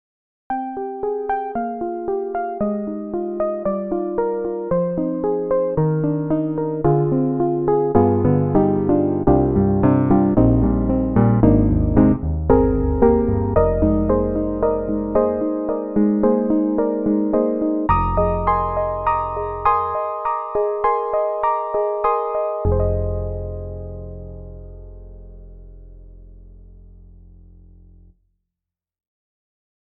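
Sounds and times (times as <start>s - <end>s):
FM soft grand piano on Steinberg HALion 7: 0.6s - 27.8s.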